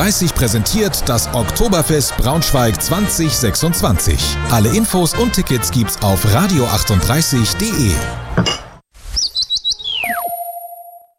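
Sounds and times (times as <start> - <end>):
speech: 0.0 - 8.6
woodpecker call with chirps, downward whistle and chime: 9.2 - 11.0.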